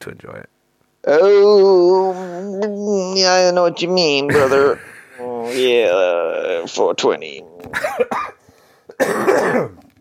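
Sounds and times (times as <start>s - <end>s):
speech: 0.0s - 8.3s, 9.0s - 9.8s
person coughing close to the microphone: 7.7s - 9.9s.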